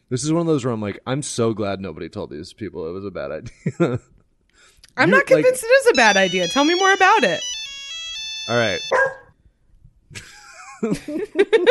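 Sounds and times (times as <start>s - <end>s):
speech: 0.1s - 4.2s, 4.9s - 7.5s, 8.5s - 9.2s, 10.1s - 11.6s
laughter: 3.4s - 4.1s, 10.2s - 11.6s
dog barking: 8.9s - 9.4s.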